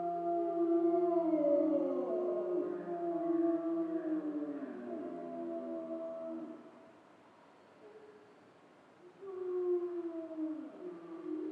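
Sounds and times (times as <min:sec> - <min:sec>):
grey wolves howling in chorus: 0:00.0 - 0:06.8, 0:09.1 - 0:11.5.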